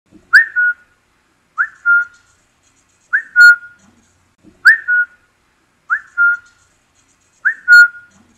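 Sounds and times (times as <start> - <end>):
whistle call: 0.3 - 0.9, 1.6 - 2.2, 3.1 - 3.8, 4.6 - 5.2, 5.9 - 6.5, 7.4 - 8.1.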